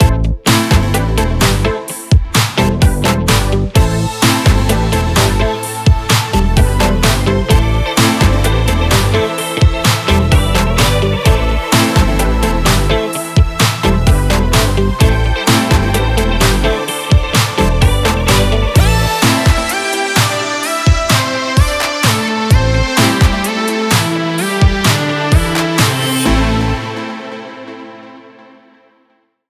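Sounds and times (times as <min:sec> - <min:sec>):
arcade pop music: 0:00.0 - 0:28.8.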